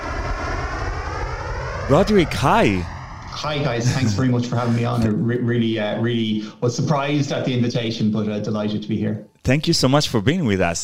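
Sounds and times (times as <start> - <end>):
airplane in flight engine drone: 0.0 - 6.7
speech: 1.9 - 10.8.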